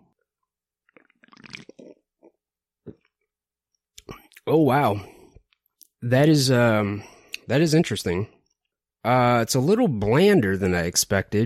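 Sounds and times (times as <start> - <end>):
gulping and smacking mouth sounds: 0.8 - 3.3
person sipping and slurping a drink: 0.9 - 3.1
speech: 4.5 - 5.1, 6.0 - 8.4, 9.0 - 11.4.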